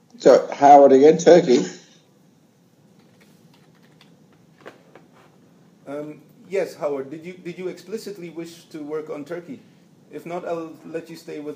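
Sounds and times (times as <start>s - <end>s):
low steady hum: 0.0s - 11.5s
speech: 0.2s - 1.8s, 6.0s - 11.5s
typing on a computer keyboard: 3.0s - 4.1s.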